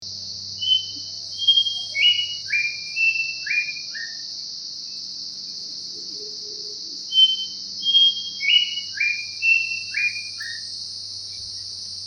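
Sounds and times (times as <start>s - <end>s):
Pachycephala simplex grey whistler bird: 0.6s - 4.2s, 7.1s - 10.6s.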